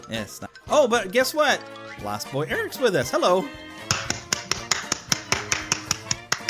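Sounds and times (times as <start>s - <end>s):
speech: 0.1s - 3.9s
few people clapping lightly: 3.9s - 6.4s.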